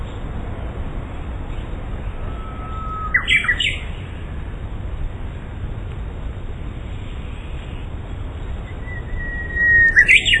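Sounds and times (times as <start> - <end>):
Japanese bush warbler song: 0.0 - 5.5, 6.6 - 10.3.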